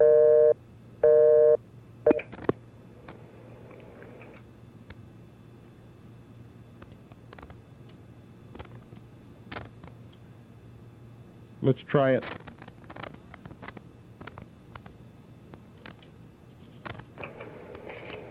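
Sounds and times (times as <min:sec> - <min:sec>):
telephone busy signal: 0:00.0 - 0:02.2
faint steady low hum: 0:00.0 - 0:18.2
speech: 0:11.7 - 0:12.5.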